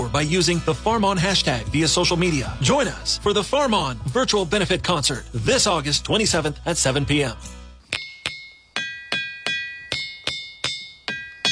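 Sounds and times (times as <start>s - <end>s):
speech: 0.2s - 7.6s
hammer striking diabase stones in a ringing rock field: 7.8s - 11.4s.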